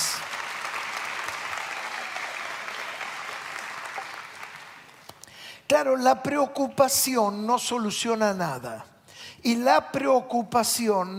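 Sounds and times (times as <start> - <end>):
audience applauding: 0.0 - 5.1
speech: 5.7 - 11.1.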